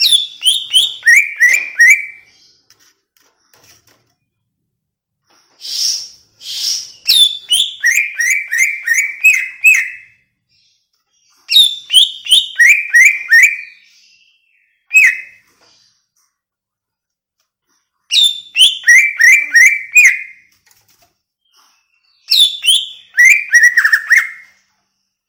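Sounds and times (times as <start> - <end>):
greater green leafbird whistling song: 0.0 - 2.4, 5.6 - 10.2, 11.4 - 15.5, 18.1 - 20.5, 21.5 - 24.6.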